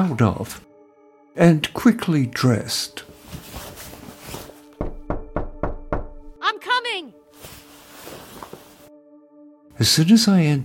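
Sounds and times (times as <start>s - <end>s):
speech: 0.0s - 0.7s, 1.4s - 3.6s, 9.8s - 10.6s
soft rustling: 3.0s - 4.8s, 7.3s - 8.9s
knocking on a house door: 4.8s - 6.4s.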